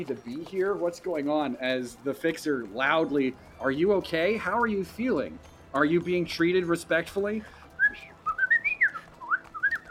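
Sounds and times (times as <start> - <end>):
speech: 0.0 - 8.1
person whistling an imitation of a canary chirping: 7.8 - 9.8.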